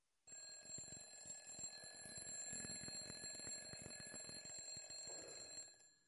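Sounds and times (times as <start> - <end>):
alarm clock ringing with loud steady metallic ringing: 1.1 - 5.8.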